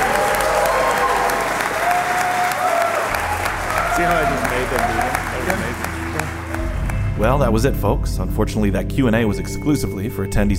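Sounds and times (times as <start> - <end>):
audience applause: 0.0 - 7.5
speech: 7.2 - 10.5.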